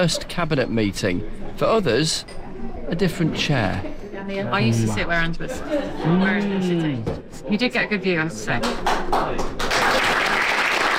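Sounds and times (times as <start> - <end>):
speech: 0.0 - 9.7
crowd applauding at a cabinet meeting: 8.6 - 10.9.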